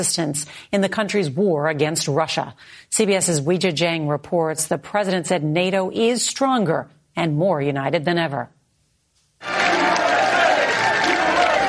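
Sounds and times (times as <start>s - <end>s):
speech: 0.0s - 8.6s
large crowd in Lithuania roaring and cheering at a speech: 9.4s - 11.6s.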